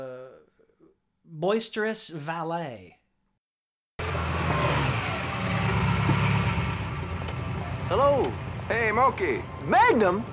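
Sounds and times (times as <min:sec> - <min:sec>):
speech: 0:01.4 - 0:03.0, 0:07.9 - 0:10.3
Ferrari sports car engine rumbling as the car pulls up to a club: 0:04.0 - 0:09.7
road noise: 0:04.0 - 0:10.3.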